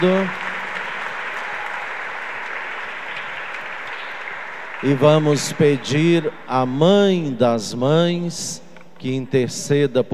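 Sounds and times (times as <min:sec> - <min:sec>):
speech: 0:00.0 - 0:00.4, 0:04.8 - 0:10.1
audience applause for mothers after a blessing: 0:00.0 - 0:07.1.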